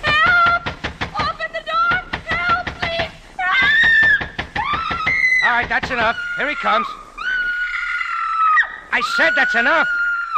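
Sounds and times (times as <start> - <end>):
fist pounding on a door: 0.0 - 6.2
woman screaming: 3.4 - 5.5, 6.2 - 10.3
speech: 5.6 - 7.0, 8.9 - 10.3.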